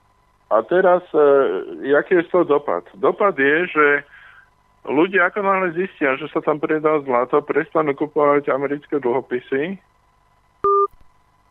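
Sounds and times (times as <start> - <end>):
speech: 0.5 - 4.1, 4.8 - 9.9
loud short electronic beep from phone call cutting off: 10.6 - 11.0
two-pitched busy-style phone tone: 10.6 - 11.0.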